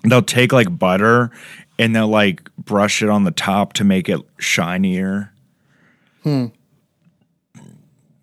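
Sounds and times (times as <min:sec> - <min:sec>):
speech: 0:00.1 - 0:05.3, 0:06.2 - 0:06.6
person burping into a microphone: 0:06.2 - 0:06.6, 0:07.6 - 0:07.9
person gulping: 0:07.5 - 0:08.2.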